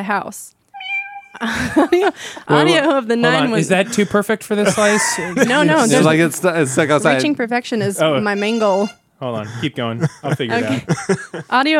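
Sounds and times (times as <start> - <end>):
speech: 0.0 - 0.6, 1.3 - 11.7
cat meows played as a sound effect: 0.8 - 1.4
steady electronic tone: 0.8 - 1.4
laughter: 1.4 - 11.7.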